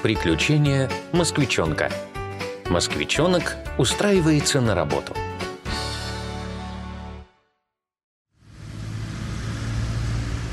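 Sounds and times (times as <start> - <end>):
speech: 0.0 - 5.4
car engine droning: 8.4 - 10.5
rumbling stream of traffic: 8.4 - 10.5.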